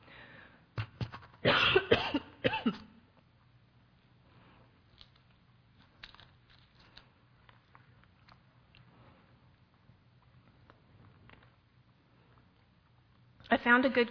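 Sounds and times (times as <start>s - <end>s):
person coughing harshly and clearing throat: 1.4s - 2.9s
faint clicks and rustles of getting a cough drop: 4.5s - 14.1s
speech: 13.8s - 14.1s.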